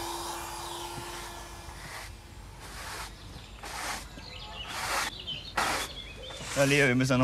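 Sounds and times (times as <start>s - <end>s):
vacuum cleaner running and pushed back and forth: 0.0s - 2.1s
speech: 6.6s - 7.2s.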